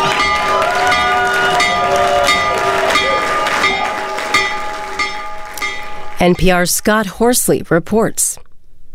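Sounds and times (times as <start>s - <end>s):
applause: 0.0s - 6.2s
crowd cheering: 0.0s - 6.7s
stock exchange opening bell ringing: 0.2s - 6.8s
speech: 6.2s - 8.4s.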